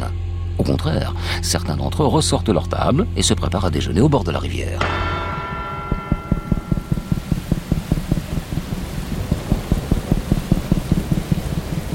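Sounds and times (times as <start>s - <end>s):
speech: 0.6s - 5.2s
rapid regular low thumps: 4.8s - 11.9s
heavy rain from a thunderstorm over Vaison-la-Romaine: 5.1s - 11.9s.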